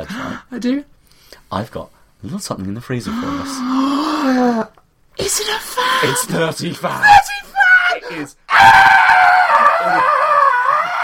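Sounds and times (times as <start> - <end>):
speech: 0.0 - 10.2
person screaming high-pitched with excitement: 3.1 - 11.0.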